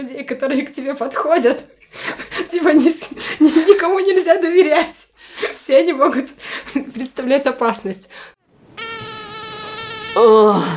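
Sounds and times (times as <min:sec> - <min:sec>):
speech: 0:00.0 - 0:08.3, 0:10.2 - 0:10.7
laughter: 0:02.0 - 0:03.8
mosquitoes buzzing: 0:08.4 - 0:10.7.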